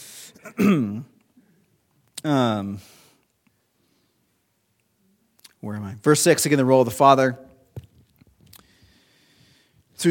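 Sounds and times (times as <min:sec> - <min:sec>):
speech: 0:00.4 - 0:01.1, 0:02.2 - 0:03.0, 0:05.6 - 0:07.5
throaty coughing and throat clearing with a voiced rasp: 0:00.4 - 0:01.2.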